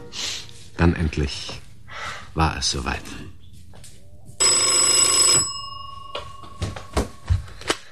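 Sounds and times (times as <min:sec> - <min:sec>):
speech: 0:00.8 - 0:01.6, 0:02.4 - 0:03.4
old-fashioned telephone bell ringing: 0:04.4 - 0:07.2.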